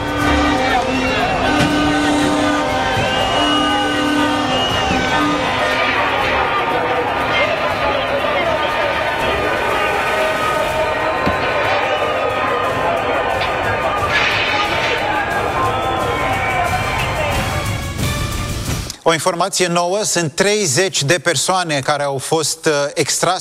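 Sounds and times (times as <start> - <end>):
overlapping shouts and chanting: 0.0 - 18.7
scattered yelling: 0.0 - 18.7
loud dense protest crowd roaring: 0.0 - 18.9
speech: 19.1 - 23.3.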